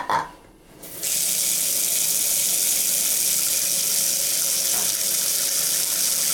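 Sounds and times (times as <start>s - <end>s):
water running from a bathroom sink tap into a clogged basin: 0.9s - 6.3s.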